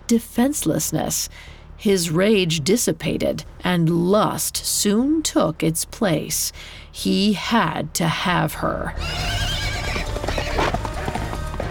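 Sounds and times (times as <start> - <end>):
speech: 0.1 - 10.2
horse bellowing neigh: 9.0 - 11.2
galloping horse hooves: 9.0 - 11.6.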